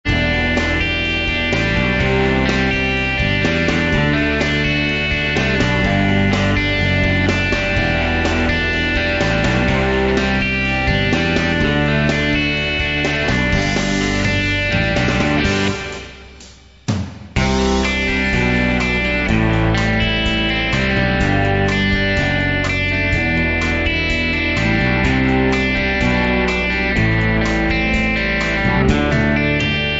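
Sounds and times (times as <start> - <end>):
folk rock music: 0.0 - 29.9.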